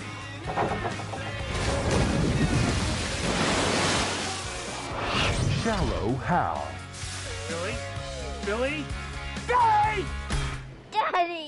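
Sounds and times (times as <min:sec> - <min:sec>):
water churning and sloshing spray: 0:00.5 - 0:05.0
large water splash in a pool: 0:01.5 - 0:05.0
speech: 0:05.7 - 0:06.7, 0:07.5 - 0:10.2, 0:11.1 - 0:11.4.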